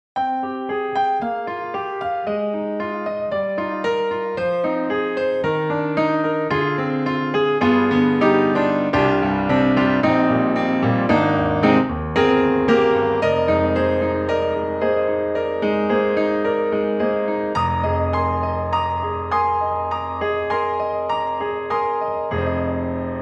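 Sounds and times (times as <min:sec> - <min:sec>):
grand piano: 0:00.2 - 0:23.2.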